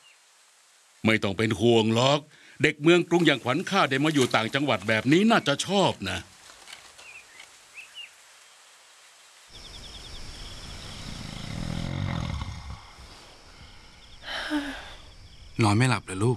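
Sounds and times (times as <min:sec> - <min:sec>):
faint chirping night sounds: 0:00.0 - 0:16.3
speech: 0:01.0 - 0:06.3, 0:15.6 - 0:16.3
grandfather snoring loudly: 0:10.8 - 0:13.8.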